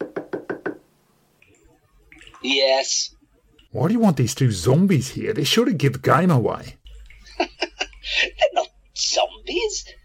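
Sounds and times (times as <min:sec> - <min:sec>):
knocking on a wooden door: 0:00.0 - 0:00.8
speech: 0:02.4 - 0:06.8, 0:09.5 - 0:10.0
laughter: 0:07.2 - 0:08.6.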